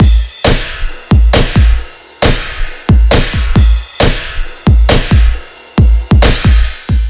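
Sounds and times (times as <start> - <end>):
dubstep drum kit: 0.0 - 7.0.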